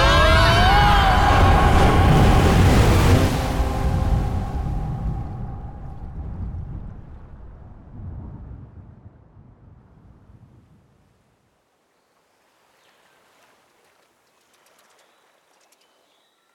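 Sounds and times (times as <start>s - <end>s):
huge ocean wave crashing over a boat: 0.1s - 8.7s.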